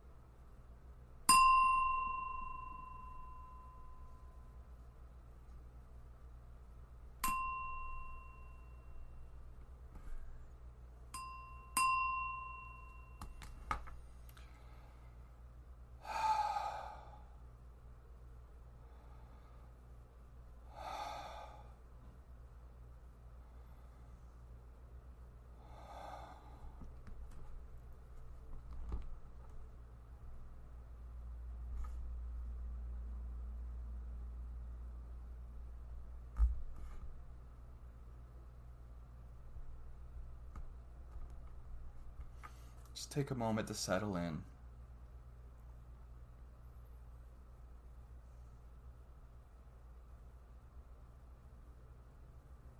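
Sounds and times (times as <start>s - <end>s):
low hum: 0.0s - 52.7s
meditation bell struck at the start of a kindness meditation practice: 1.3s - 4.6s, 7.2s - 9.3s, 11.1s - 13.4s
deep heavy breaths drawn out slowly: 16.0s - 17.4s, 20.6s - 21.9s, 25.6s - 27.0s
speech: 43.0s - 44.5s.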